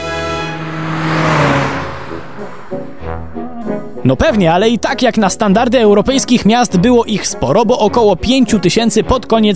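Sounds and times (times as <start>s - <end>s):
car engine revving: 0.0s - 4.4s
speech: 4.1s - 9.5s.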